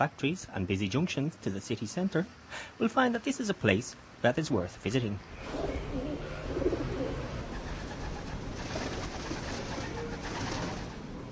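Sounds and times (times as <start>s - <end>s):
speech: 0.0s - 6.1s
steady outdoor hiss: 0.0s - 11.2s
pigeons cooing in low throaty murmurs: 5.4s - 11.1s.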